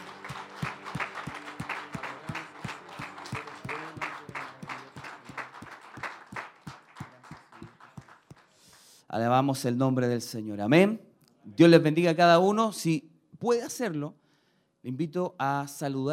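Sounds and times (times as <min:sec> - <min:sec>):
room full of people clapping in a steady rhythmic beat: 0:00.0 - 0:09.0
speech: 0:09.2 - 0:14.2, 0:14.8 - 0:16.1.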